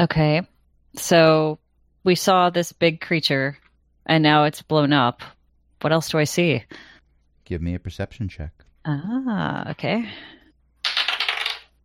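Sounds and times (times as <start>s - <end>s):
speech: 0.0s - 6.9s, 7.5s - 10.4s
dice rattling and clattering during a tabletop role-playing game: 10.8s - 11.8s.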